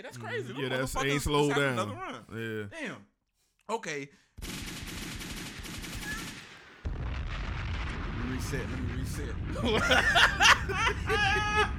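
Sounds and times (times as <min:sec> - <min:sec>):
laughter: 0:00.0 - 0:02.0, 0:09.4 - 0:11.7
speech: 0:00.0 - 0:03.1, 0:03.7 - 0:05.0, 0:08.3 - 0:11.7
sharp cracks: 0:04.4 - 0:09.5
gunfire sound effects: 0:04.4 - 0:11.2
loud rumbling bomb blast sound effects: 0:05.6 - 0:11.7.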